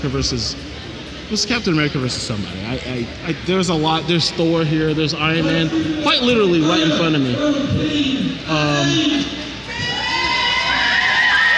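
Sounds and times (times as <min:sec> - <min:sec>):
speech: 0:00.0 - 0:09.4
crowd cheering and whooping at a fan convention: 0:09.6 - 0:11.5.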